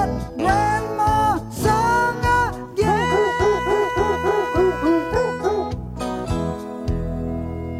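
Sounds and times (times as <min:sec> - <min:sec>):
steady backing track: 0:00.0 - 0:07.7
dog barks pitched into a festive Christmas melody: 0:02.8 - 0:06.1.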